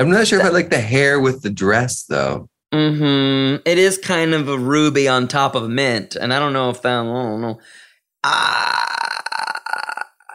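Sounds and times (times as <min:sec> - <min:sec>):
speech: 0:00.0 - 0:09.2
person burping: 0:08.2 - 0:10.3.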